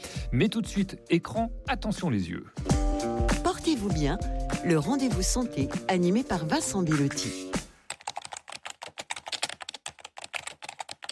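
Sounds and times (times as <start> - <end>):
speech: 0.3 - 2.8, 3.6 - 7.5
rapid typing on a computer keyboard: 7.9 - 11.1.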